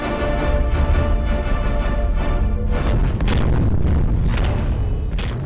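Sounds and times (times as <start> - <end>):
sustained rumbling sci-fi warp drive drone: 0.2 - 5.4
sci-fi warp drive booming explosions: 2.4 - 5.4.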